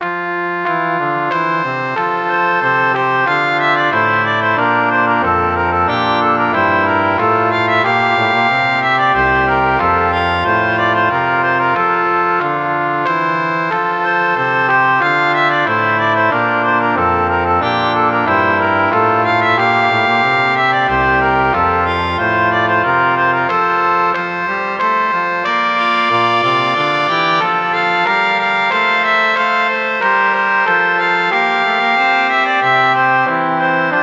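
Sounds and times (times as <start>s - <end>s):
organ: 0.0s - 34.0s.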